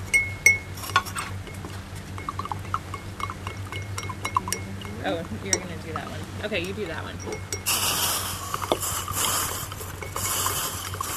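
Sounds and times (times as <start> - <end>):
steady low hum: 0.0 - 11.1
utensil clinking and stirring a chilled urine mixture in a container: 0.0 - 11.1
urine mixture splashes: 2.2 - 11.1
speech: 5.0 - 7.9.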